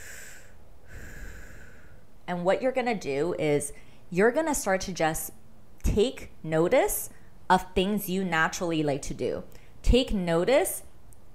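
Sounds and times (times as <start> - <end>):
faint airy breath: 0.0 - 2.1, 3.7 - 4.1
speech: 2.3 - 10.9.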